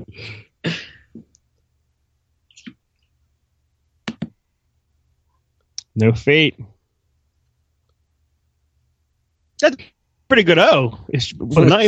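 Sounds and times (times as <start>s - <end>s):
keyboard clicks: 4.0s - 4.4s
speech: 6.0s - 6.8s, 9.6s - 11.8s.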